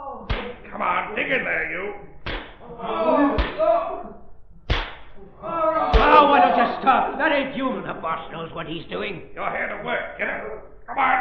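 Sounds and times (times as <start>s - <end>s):
murmur of voices: 0.0s - 4.2s, 5.2s - 9.2s
whip cracks as a boss whips workers in a mine: 0.3s - 0.6s, 2.2s - 2.6s, 3.3s - 3.7s, 4.7s - 5.2s
speech: 0.8s - 2.1s, 6.8s - 11.2s.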